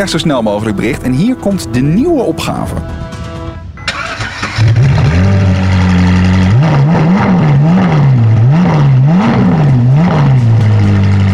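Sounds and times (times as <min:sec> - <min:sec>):
speech: 0:00.0 - 0:03.2
red car engine starting, idling and revving in a car showroom: 0:03.4 - 0:11.3.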